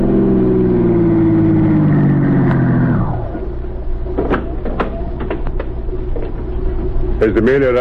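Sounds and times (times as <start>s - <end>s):
car engine slowing to idle: 0.0s - 4.2s
sharp clicks and clunks: 4.1s - 6.5s
speech: 7.3s - 7.7s.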